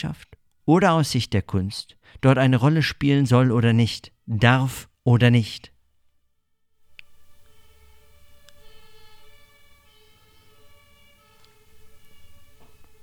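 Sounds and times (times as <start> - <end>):
speech: 0.0 - 5.7
ambulance siren wailing: 7.2 - 13.0.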